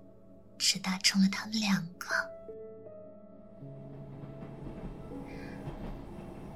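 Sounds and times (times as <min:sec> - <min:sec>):
speech: 0:00.6 - 0:02.4
train slowly pulling out: 0:03.4 - 0:06.5.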